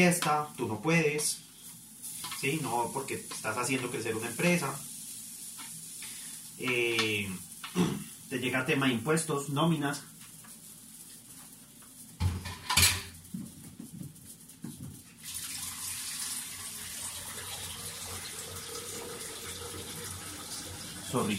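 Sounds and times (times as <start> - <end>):
speech: 0.0 - 1.5, 2.4 - 4.9, 6.6 - 10.1
dishes and utensils clinking: 12.3 - 13.2
steady stream of water pouring into a blender: 15.2 - 21.3.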